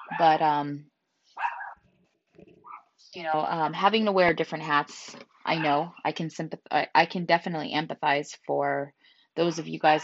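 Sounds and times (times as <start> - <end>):
speech: 0.2 - 0.9, 3.1 - 10.0
dog barking: 1.4 - 1.8, 2.6 - 2.8.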